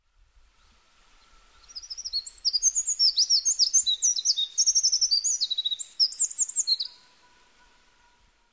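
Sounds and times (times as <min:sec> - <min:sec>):
Eurasian wren: 0:01.2 - 0:07.1.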